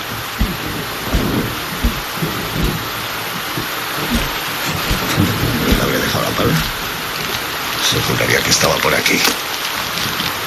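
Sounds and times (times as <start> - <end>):
low rumbling thumps: 0.0 - 7.9
heavy rain pouring in a dense hissing wash: 0.0 - 10.4
speech: 6.4 - 6.8, 7.8 - 10.2.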